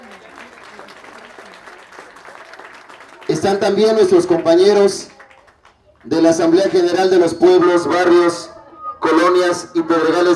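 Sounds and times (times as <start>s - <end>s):
crowd applauding musicians: 0.0s - 6.4s
speech: 3.4s - 5.1s, 6.0s - 8.5s, 9.3s - 10.3s.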